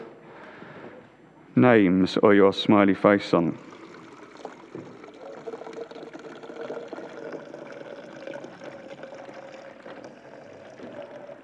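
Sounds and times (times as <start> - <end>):
speech: 1.6 - 3.7
water pouring from a jug: 3.1 - 11.4.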